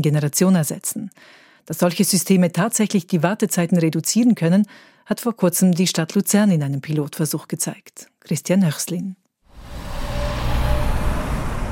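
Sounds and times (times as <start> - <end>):
speech: 0.0 - 9.8
road traffic of cars, trucks and buses on a busy city street in Lucerne: 9.5 - 11.6.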